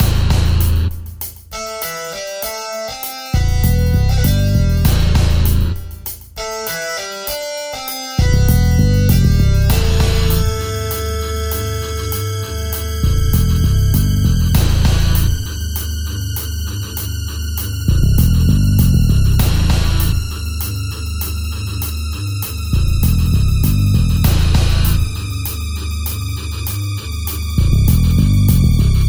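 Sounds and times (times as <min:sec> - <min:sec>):
title screen background music: 0:00.0 - 0:29.0.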